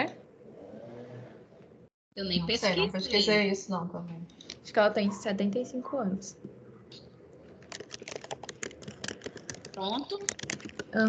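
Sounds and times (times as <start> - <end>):
speech: 2.2 - 7.0, 9.8 - 11.0
hurried typing on a computer keyboard: 7.6 - 11.0.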